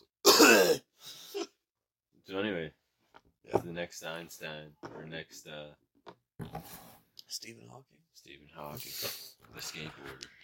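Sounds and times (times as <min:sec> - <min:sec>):
person coughing harshly: 0:00.2 - 0:01.5
speech: 0:03.9 - 0:10.4.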